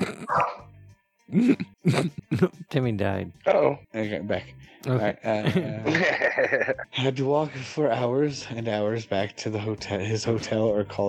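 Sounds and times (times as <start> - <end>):
loud dog barks: 0.3 - 0.6
speech: 1.3 - 11.0
laughter: 1.4 - 2.6, 4.9 - 6.9.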